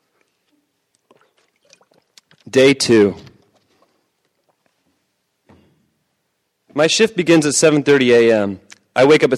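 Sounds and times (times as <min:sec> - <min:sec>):
person drinking water with wet sips and swallows: 0:01.0 - 0:02.4
speech: 0:02.5 - 0:03.2, 0:06.8 - 0:09.3.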